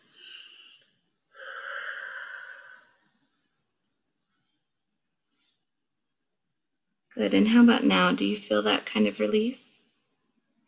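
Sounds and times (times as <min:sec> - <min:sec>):
faint deep breath: 0:00.0 - 0:03.5
speech: 0:07.2 - 0:09.7.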